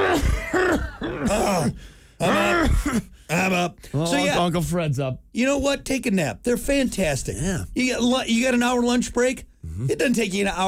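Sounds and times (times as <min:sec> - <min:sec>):
voice imitating a guttural choking cough with gurgling: 0:00.0 - 0:03.2
speech: 0:01.3 - 0:10.6.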